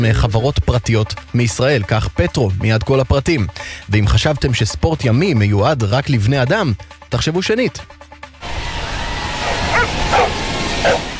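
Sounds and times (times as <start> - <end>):
speech: 0.0 - 8.0
constant outdoor wash of noise: 8.4 - 11.1
dog barking at surfing championship: 9.7 - 11.1.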